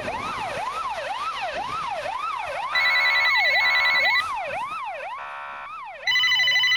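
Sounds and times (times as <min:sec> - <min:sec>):
emergency sirens wailing: 0:00.0 - 0:06.7
shrill ringing telephone: 0:02.8 - 0:04.3, 0:06.1 - 0:06.7.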